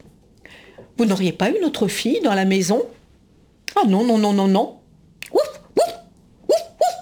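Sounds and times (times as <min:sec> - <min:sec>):
speech: 0:01.0 - 0:03.0, 0:03.8 - 0:05.4
dog barking: 0:05.2 - 0:07.0.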